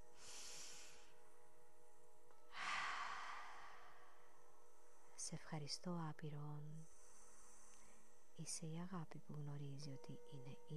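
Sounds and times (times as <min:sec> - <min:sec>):
deep breath drawn slowly through the nose and mouth: 0:00.1 - 0:01.2, 0:02.5 - 0:05.1, 0:06.8 - 0:08.2
speech: 0:05.3 - 0:07.0, 0:08.4 - 0:10.7.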